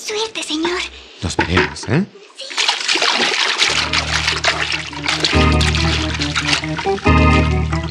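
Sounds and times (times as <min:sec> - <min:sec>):
speech: 0:00.1 - 0:02.6, 0:04.6 - 0:07.6
swimming splashes: 0:01.3 - 0:07.8
body entering water: 0:02.4 - 0:07.8
sustained low musical drone: 0:03.7 - 0:07.8.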